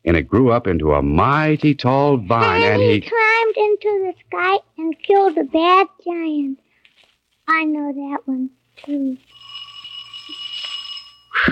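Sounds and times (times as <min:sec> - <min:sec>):
speech: 0:00.0 - 0:06.6, 0:07.5 - 0:09.4
bright metallic bell ringing: 0:09.3 - 0:11.4.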